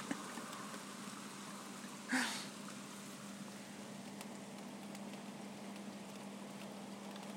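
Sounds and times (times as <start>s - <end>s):
steady rain falling outside: 0.0s - 7.3s.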